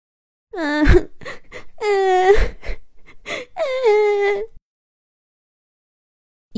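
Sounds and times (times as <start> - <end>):
voice acting out a small trash can character crying in a kitchen: 0.6 - 4.6.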